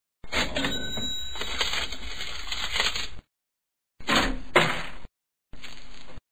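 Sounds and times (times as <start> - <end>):
small change coins in a household cash box: 0.5 - 3.1.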